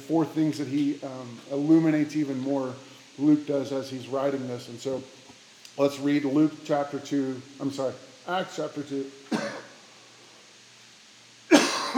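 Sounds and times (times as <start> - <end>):
speech: 0.1 - 5.2, 5.8 - 9.5
harsh coughs: 9.3 - 9.8, 11.5 - 11.9.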